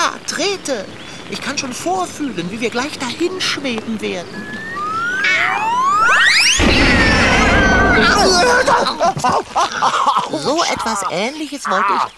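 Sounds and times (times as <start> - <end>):
speech: 0.4 - 4.7, 8.0 - 12.1
rising whistling sweeps: 4.1 - 9.2
bicycle toppling over and crashing: 6.0 - 9.4
laughter: 7.7 - 12.1.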